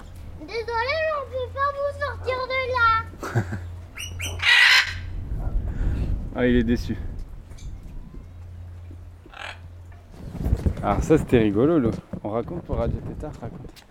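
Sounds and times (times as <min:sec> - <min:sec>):
low hum: 0:00.0 - 0:13.9
speech: 0:00.5 - 0:03.7, 0:06.4 - 0:07.1, 0:10.8 - 0:13.9
parrot squawking: 0:03.9 - 0:05.2, 0:09.2 - 0:09.8.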